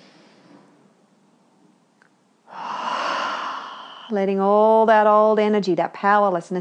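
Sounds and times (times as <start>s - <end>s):
deep breath drawn in during a guided breathing exercise: 2.5s - 4.2s
speech: 4.1s - 6.6s.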